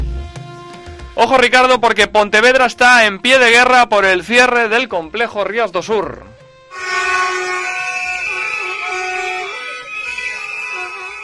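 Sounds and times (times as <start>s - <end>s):
speech: 1.2s - 7.3s
car horns honking during a protest in a city street: 6.6s - 11.2s.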